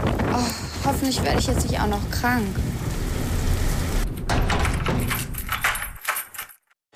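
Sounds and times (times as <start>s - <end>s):
heavy rain falling during an outdoor walk: 0.0s - 5.1s
speech: 0.4s - 2.7s.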